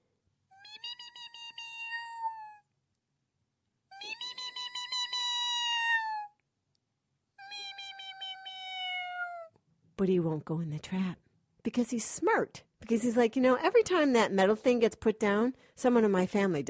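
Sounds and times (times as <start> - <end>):
human voice imitating a cat meowing: 0.5 - 2.7, 3.9 - 6.4, 7.4 - 9.6
speech: 10.0 - 16.6.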